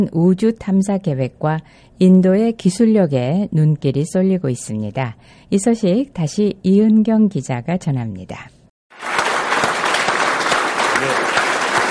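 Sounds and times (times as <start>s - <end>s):
speech: 0.0s - 8.6s
room full of people applauding and cheering: 8.9s - 11.8s.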